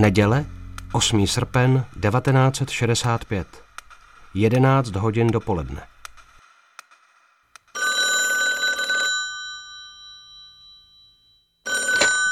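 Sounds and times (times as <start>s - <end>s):
speech: 0.0s - 3.6s, 4.3s - 5.9s
old-style telephone bell ringing: 7.8s - 12.3s.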